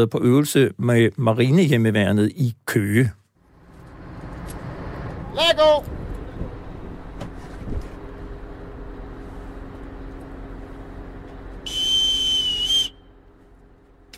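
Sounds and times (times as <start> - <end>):
speech: 0.0 - 3.2, 5.4 - 6.0
boat engine low rumble: 3.4 - 14.1
wind noise: 5.0 - 8.0
boatswain's pipe whistled by the skipper aboard a naval home guard vessel: 11.6 - 13.2.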